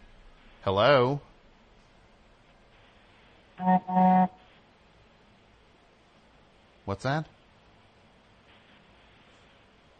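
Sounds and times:
speech: 0.6 - 1.3, 3.6 - 4.4, 6.9 - 7.4
car horn honking: 3.6 - 4.4.

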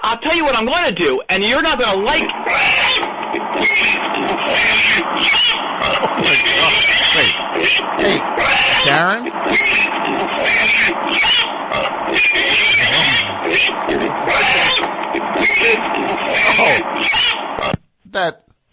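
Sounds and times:
speech: 0.1 - 2.8, 3.6 - 18.5
pig grunting and squealing: 2.2 - 17.8
laughter: 5.9 - 8.3, 12.8 - 16.9.

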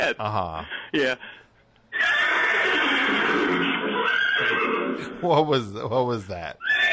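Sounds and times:
speech: 0.0 - 1.4, 2.0 - 6.9
horse whinny sound effect from a toy laser horse whip: 1.9 - 5.2.

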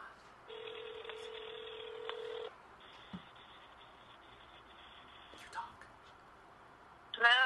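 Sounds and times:
phone dialing tones on speakerphone: 0.5 - 5.3.

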